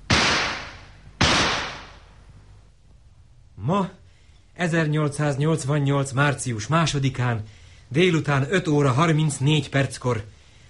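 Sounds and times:
gunshots fired as signal shots by a lakeside: 0:00.0 - 0:02.1
speech: 0:03.7 - 0:04.0, 0:04.6 - 0:10.4.

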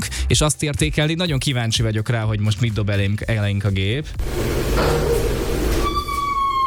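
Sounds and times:
speech: 0:00.3 - 0:05.2
door creaking open: 0:04.2 - 0:06.6.

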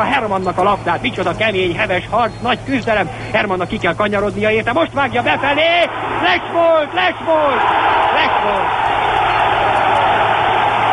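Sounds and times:
speech: 0:00.0 - 0:08.8
stadium crowd roaring and whistling: 0:05.2 - 0:10.9.

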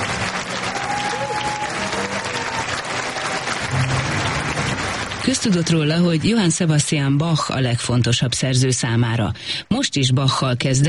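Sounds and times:
large concert audience applauding: 0:00.0 - 0:06.7
speech: 0:05.3 - 0:10.8.

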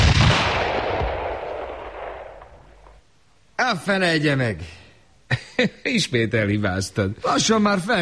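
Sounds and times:
single rifle shot fired at a flock of starlings: 0:00.0 - 0:03.0
speech: 0:03.6 - 0:08.0.

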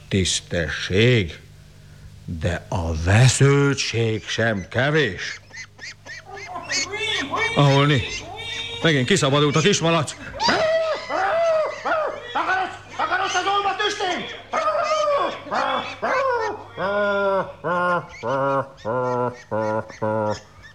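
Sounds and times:
speech: 0:00.1 - 0:01.4, 0:02.3 - 0:06.0, 0:07.6 - 0:08.2, 0:08.8 - 0:10.6
ducks quacking on a farm: 0:02.1 - 0:20.7
laughter: 0:06.2 - 0:20.7.

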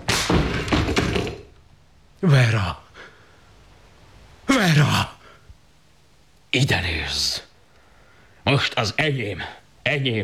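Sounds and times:
heavy thuds on a door being forced: 0:00.0 - 0:01.5
speech: 0:02.2 - 0:02.8, 0:06.5 - 0:07.4, 0:08.5 - 0:10.2.

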